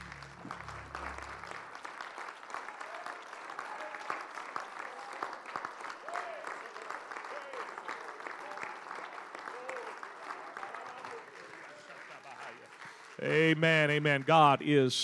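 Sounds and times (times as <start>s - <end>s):
low hum: 0.0s - 1.8s
large audience clapping: 0.0s - 14.5s
speech: 13.2s - 15.0s.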